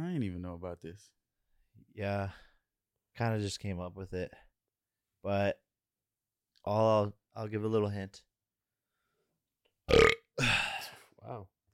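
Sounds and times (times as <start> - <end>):
speech: 0.5 - 1.2, 2.0 - 2.5, 3.2 - 4.5, 5.2 - 5.6, 6.6 - 8.3, 9.9 - 10.6, 11.2 - 11.7
person burping: 9.9 - 11.0.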